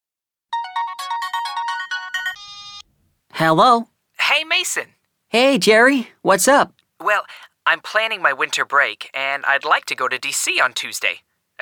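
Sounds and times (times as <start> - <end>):
bright electronic phone ringtone with chiming tones: 0.5 - 2.8
speech: 3.4 - 11.6.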